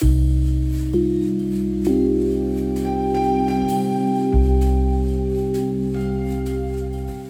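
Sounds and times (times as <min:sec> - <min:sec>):
scintillating synth pad: 0:00.9 - 0:07.2.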